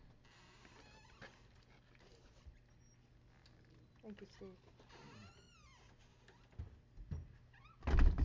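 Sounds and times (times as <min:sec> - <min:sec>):
faint squeaky sounds: 0:00.2 - 0:06.5
speech: 0:04.0 - 0:05.0
door swinging shut with a heavy thud: 0:07.8 - 0:08.2.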